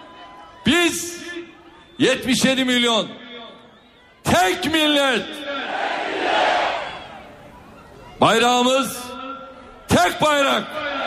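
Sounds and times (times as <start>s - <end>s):
speech: 0.7s - 3.2s, 4.3s - 5.6s, 8.2s - 9.1s, 10.0s - 11.0s
large crowd at a political rally in Turkey shouting in unison: 5.4s - 7.2s, 10.7s - 11.0s.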